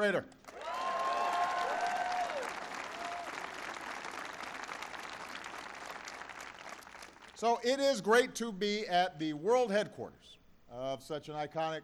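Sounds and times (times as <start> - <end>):
speech: 0.0 - 0.4, 7.4 - 11.8
crowd applauding: 0.4 - 7.4
whistles or cheers: 0.6 - 3.4.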